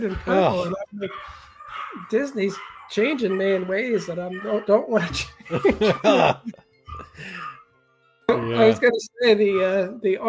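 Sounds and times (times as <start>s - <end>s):
laughter: 0.0s - 1.3s, 4.0s - 7.5s
speech: 0.0s - 7.5s, 8.3s - 10.2s
dogs yipping and whining excitedly in the background: 1.0s - 4.8s.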